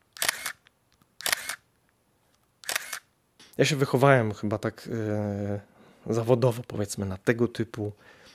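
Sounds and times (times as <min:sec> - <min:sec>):
Canon EOS 300 film SLR camera shutter firing with a mechanical clack and whirr: 0:00.1 - 0:01.7, 0:02.6 - 0:03.1
speech: 0:03.6 - 0:08.2.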